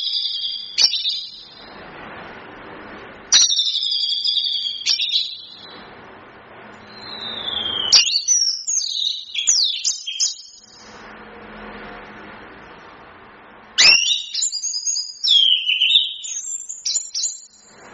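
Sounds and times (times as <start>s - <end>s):
chestnut-capped thrush singing whistles and slurred notes: 0.0s - 1.7s, 3.3s - 5.7s, 6.8s - 11.0s, 13.8s - 17.8s.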